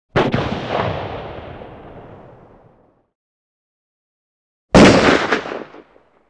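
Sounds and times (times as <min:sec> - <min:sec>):
large guns firing: 0:00.2 - 0:02.7, 0:04.8 - 0:05.9.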